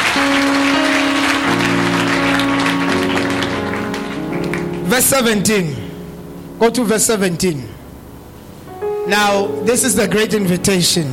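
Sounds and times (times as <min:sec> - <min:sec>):
audience clapping for the reading of the word: 0:00.0 - 0:05.2
organ-like tones humming: 0:00.0 - 0:11.1
speech: 0:05.0 - 0:05.8, 0:06.6 - 0:07.8, 0:09.1 - 0:11.1.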